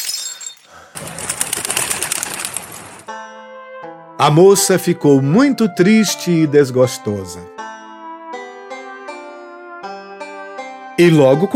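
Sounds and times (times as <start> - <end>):
bird flapping its wings and flying away: 1.0 - 3.1
speech: 4.2 - 7.6, 11.0 - 11.5.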